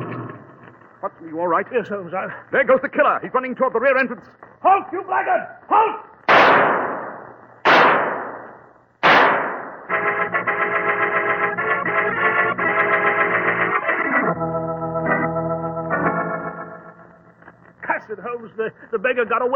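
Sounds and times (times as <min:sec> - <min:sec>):
speech: 0:01.2 - 0:06.7, 0:18.1 - 0:19.5
pistol shots fired at a fleeing killer: 0:06.3 - 0:09.9
sustained music: 0:09.9 - 0:17.4.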